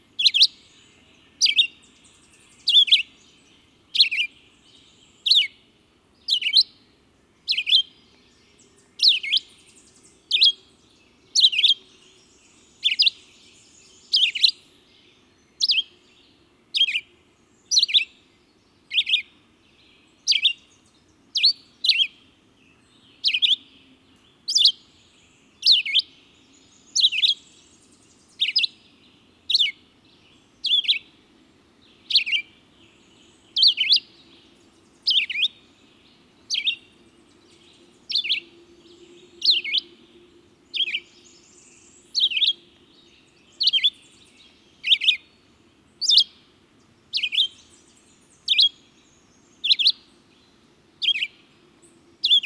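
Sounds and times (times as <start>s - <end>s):
red-eyed vireo calling: 0.0s - 5.6s, 6.2s - 6.8s, 7.4s - 14.6s, 15.5s - 16.0s, 16.7s - 17.1s, 17.7s - 18.3s, 18.9s - 19.3s, 20.2s - 24.9s, 25.6s - 26.2s, 26.9s - 27.6s, 28.3s - 28.9s, 29.5s - 29.8s, 30.4s - 31.2s, 32.0s - 46.5s, 47.1s - 49.0s, 49.6s - 50.3s, 51.0s - 52.4s.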